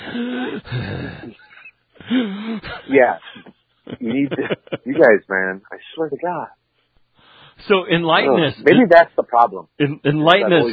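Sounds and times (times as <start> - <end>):
voice imitating heavy mouth breathing with raspy wheezy exhales: 0.0 - 3.0
laughter: 0.0 - 5.3
speech: 0.1 - 1.5, 2.1 - 6.6, 7.6 - 10.7.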